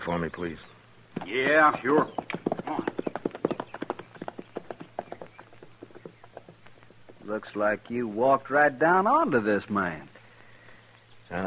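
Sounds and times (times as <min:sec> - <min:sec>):
speech: 0:00.0 - 0:03.0, 0:07.3 - 0:10.1
low hum: 0:00.0 - 0:11.4
horse hooves clip-clopping: 0:01.1 - 0:08.0.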